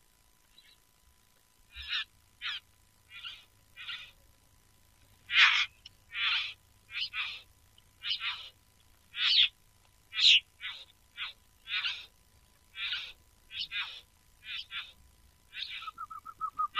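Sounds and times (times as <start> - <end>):
parrot making odd squawking calls: 1.7 - 4.2, 5.3 - 7.4, 8.0 - 9.5, 10.1 - 12.1, 12.7 - 16.7
parrot wavering whistle: 15.6 - 16.7.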